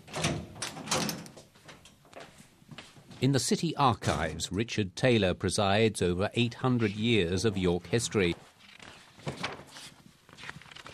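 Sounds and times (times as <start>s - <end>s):
door being unlocked: 0.0s - 1.4s
speech: 3.2s - 8.4s.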